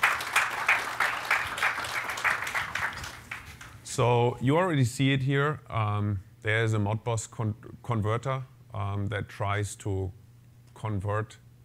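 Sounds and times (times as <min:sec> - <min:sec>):
audience applause: 0:00.0 - 0:03.7
speech: 0:04.0 - 0:10.2, 0:10.8 - 0:11.4.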